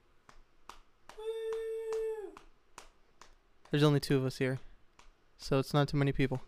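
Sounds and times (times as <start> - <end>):
a couple of people clapping slowly: 0.7 - 3.8
long steady voiced whoop: 1.1 - 2.5
speech: 3.7 - 4.7, 5.4 - 6.4.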